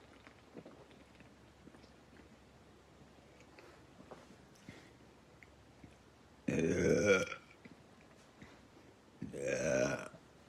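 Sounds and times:
person belching: 6.5s - 7.4s, 9.2s - 10.2s.

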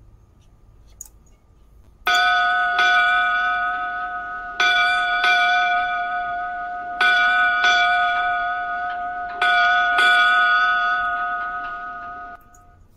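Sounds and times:
ship's bell ringing: 2.1s - 12.8s.

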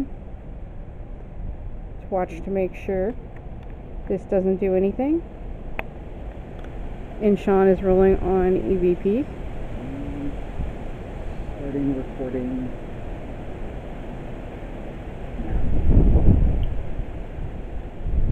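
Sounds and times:
wind rumbling across the microphone outdoors: 0.0s - 18.3s
speech: 2.1s - 3.4s, 4.1s - 5.4s, 7.2s - 9.4s, 11.8s - 12.8s
faint indistinct voices murmuring: 9.8s - 10.4s.

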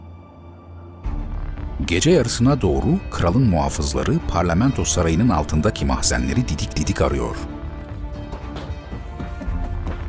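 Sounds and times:
speech: 1.8s - 7.6s
running footsteps echoing on a hard floor in an enclosed stone space: 7.6s - 10.0s.

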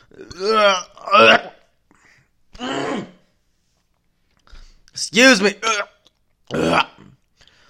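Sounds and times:
speech: 0.1s - 0.9s, 5.2s - 5.7s
strange throaty cough: 0.2s - 1.7s, 6.5s - 7.2s.

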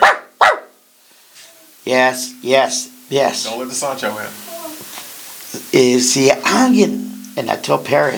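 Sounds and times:
female pet watch dog barking: 0.0s - 0.8s
longer drawn-out voiced sound: 1.5s - 4.9s
speech: 1.8s - 4.5s, 5.5s - 8.1s.

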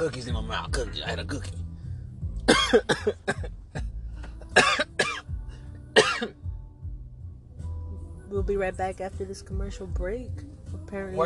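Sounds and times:
speech: 0.0s - 1.6s, 2.7s - 3.6s, 8.3s - 11.2s
person coughing harshly: 2.4s - 5.3s, 6.0s - 6.4s.

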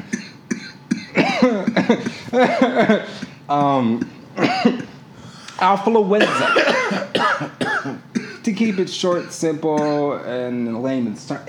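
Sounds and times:
harsh dry and raspy coughing: 0.0s - 5.0s, 6.2s - 10.2s
speech: 1.8s - 4.9s, 5.6s - 7.6s, 8.5s - 11.4s
strained throaty breaths: 5.1s - 5.6s.

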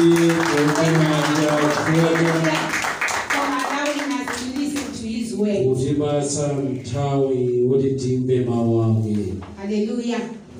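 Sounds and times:
speech: 0.0s - 2.7s, 6.0s - 10.4s
crowd clapping at a worship service: 0.0s - 5.0s.

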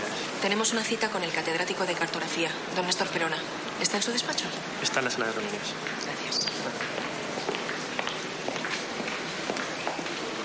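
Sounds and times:
dense hissy noise: 0.0s - 10.4s
speech: 0.4s - 7.0s
footsteps walking along a cloister corridor in a university: 5.8s - 10.4s.

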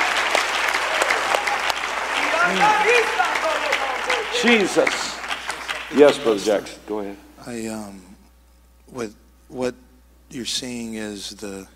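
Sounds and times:
church congregation at a religious conference clapping hands in praise: 0.0s - 6.7s
congregation voices calling out: 1.0s - 5.2s
speech: 2.5s - 5.2s, 5.9s - 8.1s, 8.9s - 11.7s.

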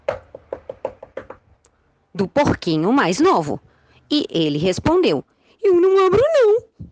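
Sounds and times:
firm knocking on a wooden door: 0.0s - 1.4s
speech: 2.2s - 6.7s.

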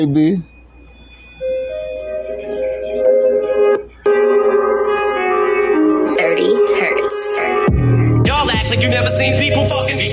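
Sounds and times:
speech: 0.0s - 0.5s, 8.7s - 10.1s
rap song with sustained melodic synth notes over a beat: 2.1s - 10.1s.

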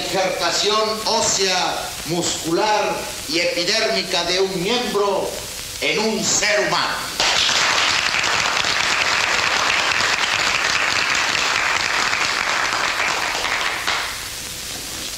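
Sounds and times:
speech: 0.1s - 7.5s
sizable crowd of colleagues applauding: 7.2s - 14.3s.

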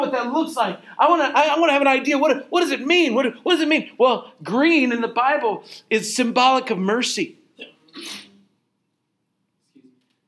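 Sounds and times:
speech: 0.1s - 8.3s
sharp breathy sneeze: 7.6s - 8.4s.

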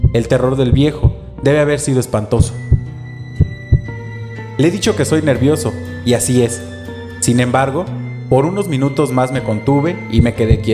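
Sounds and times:
deep thudding heartbeats: 0.0s - 1.3s, 2.4s - 4.0s, 10.2s - 10.7s
speech: 0.1s - 2.7s, 4.6s - 10.7s.

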